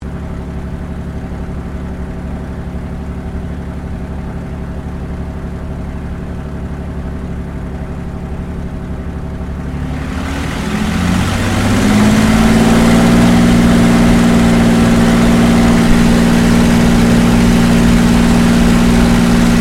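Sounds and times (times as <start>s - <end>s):
CAC CA-18 Mustang Mk23 aircraft preflight interior: 9.5s - 19.5s.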